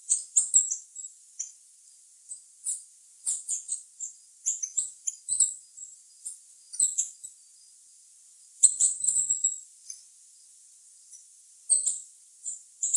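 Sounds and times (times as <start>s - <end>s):
green-and-gold tanager squeaky twitters: 0.1s - 1.6s, 2.7s - 7.3s, 8.6s - 10.0s, 11.1s - 12.9s.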